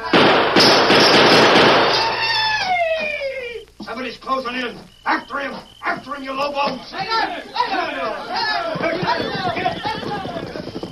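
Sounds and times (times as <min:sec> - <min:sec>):
gunshot bangs aimed at bottles on a large table in a room: 0:00.0 - 0:02.2
speech: 0:04.5 - 0:09.9.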